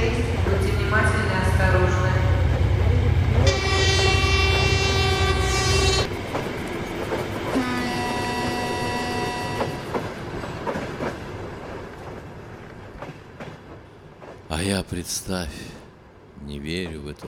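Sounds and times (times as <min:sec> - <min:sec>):
rumble of rail noise and rolling cars of departing train: 0:00.0 - 0:17.2
train horn blasts: 0:03.4 - 0:06.1, 0:07.6 - 0:09.9
speech: 0:14.9 - 0:15.8, 0:16.5 - 0:17.2.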